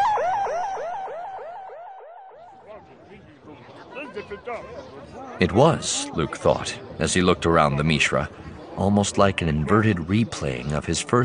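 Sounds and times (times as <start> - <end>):
siren wailing in rising sweeps: 0.0 - 2.8
speech: 4.2 - 11.2.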